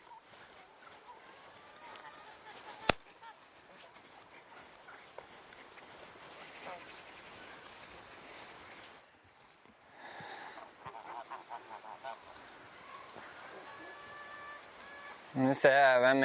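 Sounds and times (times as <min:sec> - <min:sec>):
geese honking: 0:00.0 - 0:03.8, 0:04.5 - 0:08.3, 0:10.4 - 0:15.4
speech: 0:15.4 - 0:16.2.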